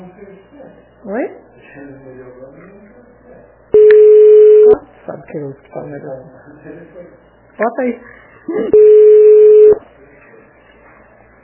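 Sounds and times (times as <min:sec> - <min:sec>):
speech: 0:00.1 - 0:03.6, 0:04.7 - 0:09.8
phone line ringback tone: 0:03.8 - 0:04.8, 0:08.7 - 0:09.8.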